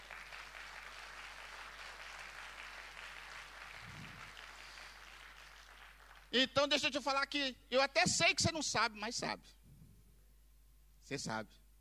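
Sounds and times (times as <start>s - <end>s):
crowd applauding: 0.0s - 6.5s
speech: 6.3s - 9.6s, 11.1s - 11.6s.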